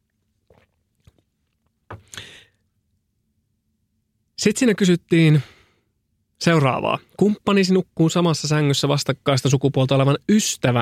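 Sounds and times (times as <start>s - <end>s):
person sipping water: 0.4s - 1.2s
speech: 4.4s - 5.6s, 6.4s - 10.8s.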